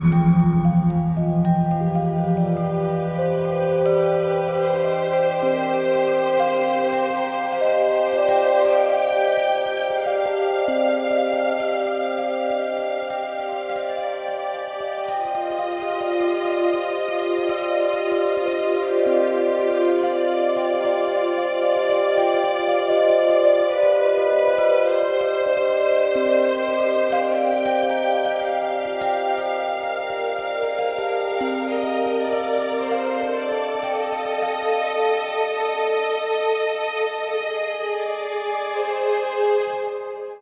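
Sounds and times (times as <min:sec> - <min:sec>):
bell tower ringing: 0:00.0 - 0:39.5.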